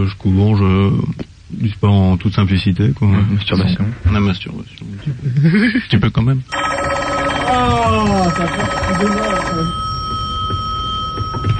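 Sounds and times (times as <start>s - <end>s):
speech: 0.0s - 9.9s
telephone ringing on a direct line into a studio: 6.5s - 11.5s.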